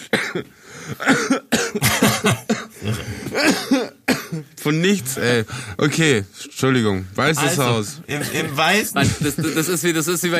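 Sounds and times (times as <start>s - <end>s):
person coughing after choking on a piece of egg: 0.0s - 4.6s, 8.1s - 9.5s
speech: 0.4s - 1.5s, 4.7s - 10.3s
laughter: 8.1s - 10.1s.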